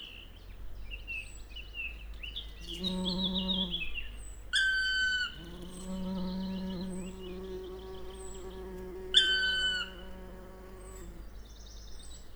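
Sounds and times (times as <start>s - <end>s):
high chirping birdsong of a morning chorus: 0.0s - 12.3s
bumblebee flight buzz: 2.7s - 3.9s, 5.3s - 11.4s.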